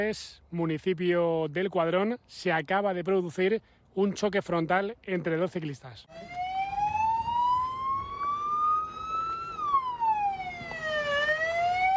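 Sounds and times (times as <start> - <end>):
speech: 0.0 - 6.5
siren of an emergency medical rapid-response vehicle in Madrid: 6.1 - 11.9.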